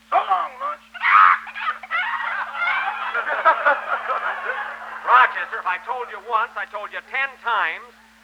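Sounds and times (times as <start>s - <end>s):
chicken squawking and cackling after being thrown: 0.9s - 5.7s
laughter: 0.9s - 7.1s
speech: 5.7s - 8.0s.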